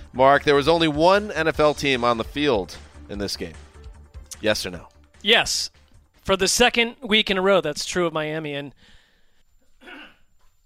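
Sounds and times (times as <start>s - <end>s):
speech: 0.2s - 3.6s, 4.4s - 9.0s
quiet breathing: 8.7s - 10.6s
person coughing: 9.8s - 10.3s.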